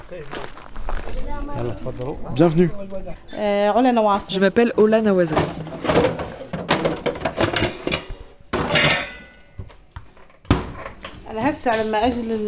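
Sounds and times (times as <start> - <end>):
speech: 0.1 - 0.6, 1.4 - 6.0, 11.6 - 12.4
dishes, pots and pans clattering while washed and stacked: 5.2 - 9.7.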